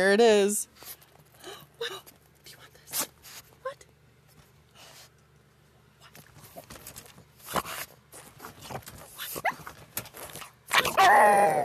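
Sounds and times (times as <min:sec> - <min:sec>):
speech: 0:00.0 - 0:01.0, 0:11.1 - 0:11.6
pug drawn-out whining yelp: 0:09.2 - 0:09.7, 0:10.7 - 0:11.6
pug whimpering for a treat: 0:10.7 - 0:11.6.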